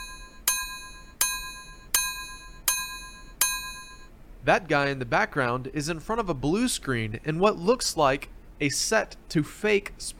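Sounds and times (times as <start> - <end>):
bright metallic bell ringing: 0.0 - 4.1
speech: 4.4 - 10.1.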